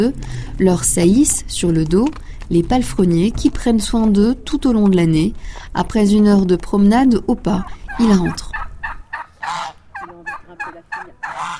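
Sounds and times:
speech: 0.0 - 8.6
turkeys gobbling in a backyard: 7.4 - 11.5
geese honking in a backyard: 7.5 - 11.5.

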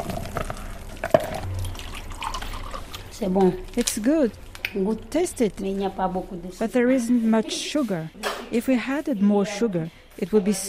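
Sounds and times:
creamy white baobab-fruit drink splashing and dripping while poured: 0.0 - 4.8
speech: 3.2 - 10.6.

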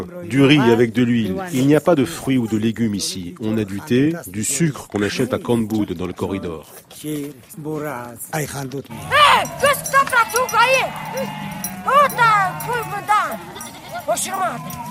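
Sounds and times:
speech: 0.0 - 14.8
herd of sheep and goats scuffling: 8.9 - 14.8
sheep and goats bleating on a mountainside: 8.9 - 14.8.

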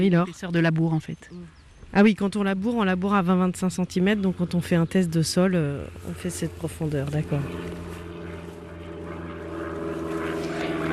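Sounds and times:
speech: 0.0 - 8.0
small propeller plane droning overhead: 2.4 - 10.9.

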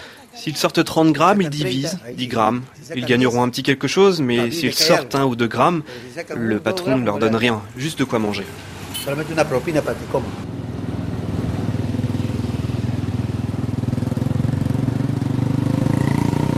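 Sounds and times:
speech: 0.4 - 10.5
motorcycle taxi engine starting up and running: 10.4 - 16.5.

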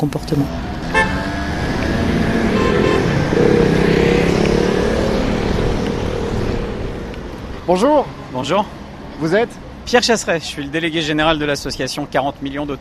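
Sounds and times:
speech: 0.0 - 0.7, 7.7 - 12.7
idling and creeping engines in a traffic jam by the Seine in Paris: 0.0 - 12.7
car horn toots in a Paris traffic jam: 0.9 - 1.4, 2.2 - 3.6.

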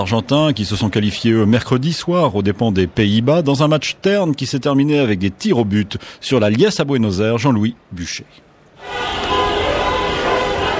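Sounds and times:
speech: 0.0 - 9.2
car horns honking in a street celebration in Argentina: 8.8 - 10.7.

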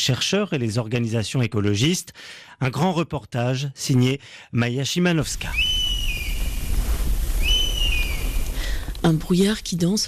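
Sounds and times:
speech: 0.0 - 5.9, 9.0 - 10.0
drawn-out whistled bird calls in a forest at daybreak: 5.5 - 8.6.

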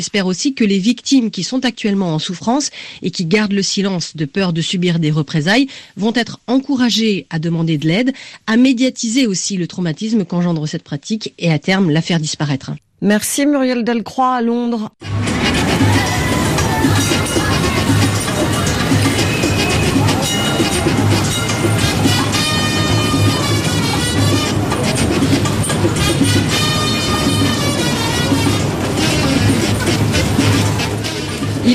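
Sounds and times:
speech: 0.0 - 15.2
high metallic squeals of tram: 15.0 - 31.7
historic red tram rumbling along the street: 15.0 - 31.7
tram wheels clattering on the rails: 15.0 - 31.7
tram ringing tones: 15.1 - 31.0.

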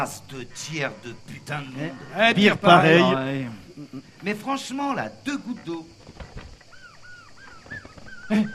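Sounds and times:
speech: 0.0 - 6.3, 8.3 - 8.5
seagull mewing and squawking: 6.6 - 8.5.

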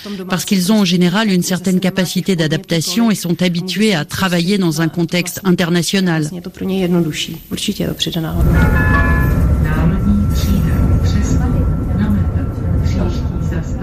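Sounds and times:
speech: 0.0 - 9.4
tram rolling past in a city street in Prague: 7.0 - 13.8
thin metallic whine from tram wheels: 8.4 - 13.8.

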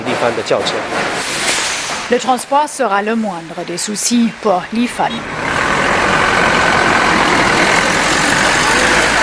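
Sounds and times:
speech: 0.2 - 1.5, 2.1 - 5.6
heavy engine idling at Chongqing freight station in China: 4.6 - 9.2
hissing wash: 5.3 - 9.2.

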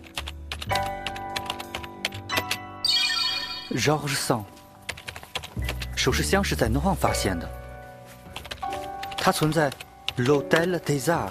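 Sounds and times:
typing on a computer keyboard: 0.0 - 2.6, 4.8 - 6.1, 8.3 - 11.2
speech: 3.7 - 4.6, 6.0 - 7.6, 9.2 - 11.2.

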